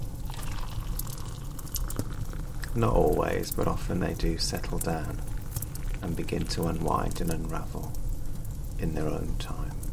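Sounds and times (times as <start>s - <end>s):
tea pouring into a cup from a kettle: 0.2s - 8.0s
speech: 2.8s - 5.3s, 6.0s - 8.0s, 8.8s - 9.8s.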